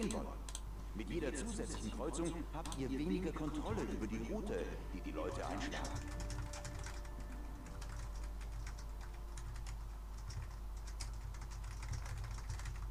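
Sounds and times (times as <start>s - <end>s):
speech: 1.0s - 6.2s
typing on a computer keyboard: 5.7s - 12.9s.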